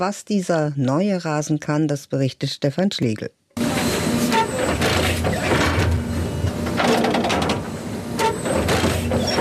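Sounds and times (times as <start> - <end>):
speech: 0.0 - 3.4
hybrid turf stitching machine running: 3.6 - 9.3
hybrid turf stitching machine injecting fibres into turf: 3.7 - 9.3.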